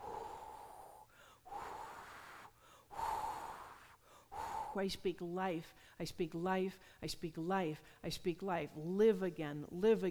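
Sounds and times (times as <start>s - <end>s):
deep airy inhales and exhales: 0.0s - 5.0s
speech: 4.7s - 10.0s.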